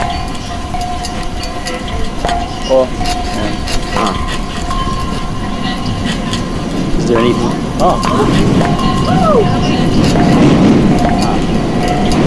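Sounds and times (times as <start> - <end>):
high thin metallic squeals of train: 0.0 - 12.2
train rumbling while arriving at station: 0.0 - 12.2
speech: 2.7 - 3.2, 7.1 - 10.5
person exclaiming: 9.1 - 9.5.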